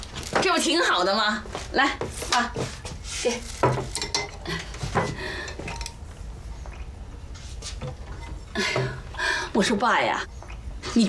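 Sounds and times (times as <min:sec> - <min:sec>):
speech: 0:00.4 - 0:04.6, 0:09.6 - 0:11.0
cooking pot of porridge clanking and scraping as it is handled and set down: 0:03.6 - 0:06.0
metal kitchenware clattering against a surface: 0:03.6 - 0:06.0.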